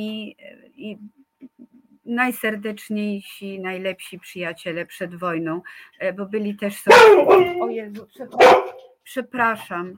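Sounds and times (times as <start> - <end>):
speech: 0.0 - 1.2, 2.1 - 9.9
dog barking: 6.9 - 9.0.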